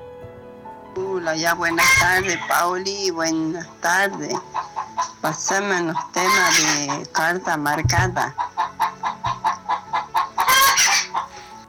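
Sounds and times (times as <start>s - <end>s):
speech: 1.0s - 4.6s, 5.2s - 8.4s
hen clucking: 1.4s - 11.6s.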